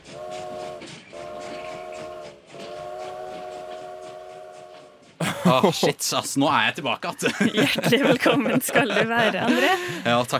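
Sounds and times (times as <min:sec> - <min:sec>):
train whistle blowing: 0:00.0 - 0:05.2
train rumbling and clattering getting underway: 0:00.0 - 0:10.3
laughter: 0:05.2 - 0:10.3
speech: 0:05.5 - 0:10.3.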